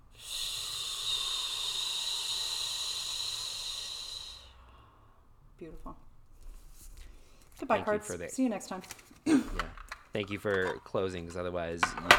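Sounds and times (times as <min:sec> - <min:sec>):
voiced sigh as breath is let out: 0:00.0 - 0:05.3
deep breath in during a guided seated relaxation exercise: 0:00.0 - 0:05.4
speech: 0:05.6 - 0:06.1, 0:07.6 - 0:12.1.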